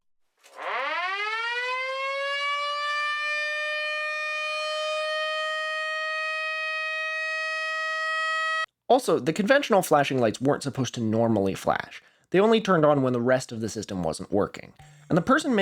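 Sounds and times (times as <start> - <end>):
Federal Signal Model A air raid siren winding up: 0.5 - 8.7
speech: 8.9 - 15.6.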